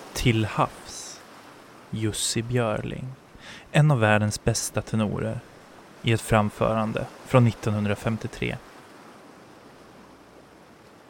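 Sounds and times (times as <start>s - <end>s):
ocean waves: 0.0s - 11.0s
speech: 0.2s - 1.0s, 1.9s - 8.7s.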